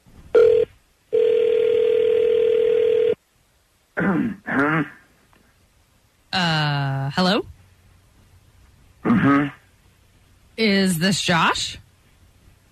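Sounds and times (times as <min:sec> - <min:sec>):
cell phone dialing tone as a call is placed to a cell phone: 0:00.4 - 0:03.2
person clearing throat: 0:04.0 - 0:05.0, 0:09.0 - 0:09.6
speech: 0:04.0 - 0:05.0, 0:07.2 - 0:07.5, 0:11.0 - 0:11.8.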